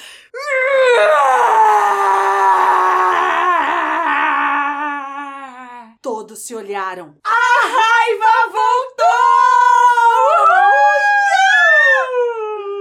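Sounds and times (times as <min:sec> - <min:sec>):
long loud wavering scream: 0:00.4 - 0:05.3, 0:09.0 - 0:12.5
speech: 0:06.4 - 0:08.9.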